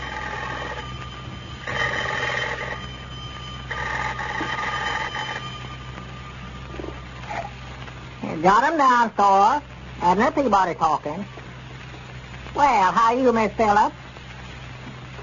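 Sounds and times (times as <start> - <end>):
old-fashioned telephone bell ringing: 0.0 - 7.6
constant low hum: 0.0 - 15.2
speech: 8.4 - 11.4, 12.6 - 14.0.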